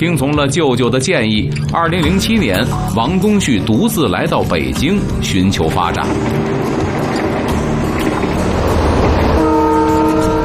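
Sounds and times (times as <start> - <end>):
speech: 0.0 - 7.1
crowded green passenger train in China travelling to Beijing rumbling past: 1.8 - 10.4
passenger train horn blast: 9.0 - 10.4.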